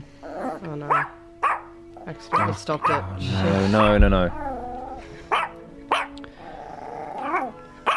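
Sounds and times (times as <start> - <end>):
dog growling: 0.2 - 7.6
speech: 0.6 - 1.2, 2.1 - 4.4
dog barking: 0.8 - 1.7, 2.3 - 3.1, 5.3 - 6.2, 7.2 - 7.9.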